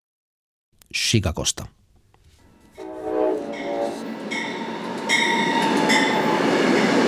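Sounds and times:
speech: 0.9s - 1.8s
high metallic train wheel squeals: 2.4s - 6.4s
Amtrak passenger train horn in the United States: 2.5s - 6.4s
Amtrak passenger train rumbling on rails in the United States: 2.6s - 7.0s.

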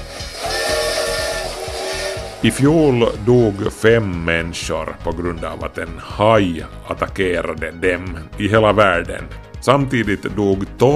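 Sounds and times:
steam train whistle blowing: 0.0s - 4.1s
approaching steam train chugging and hissing: 0.0s - 5.1s
speech: 2.4s - 10.9s.

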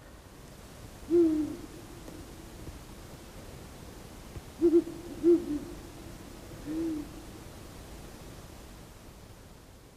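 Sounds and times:
faint steady hiss: 0.0s - 9.9s
owls hooting to each other on an evening hillside: 1.1s - 1.6s, 4.6s - 5.7s.

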